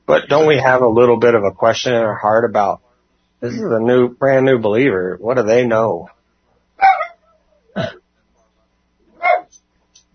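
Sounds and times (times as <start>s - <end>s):
speech: 0.1s - 2.8s, 3.4s - 6.2s, 7.8s - 8.0s
dog barking: 6.8s - 7.2s, 9.2s - 9.5s.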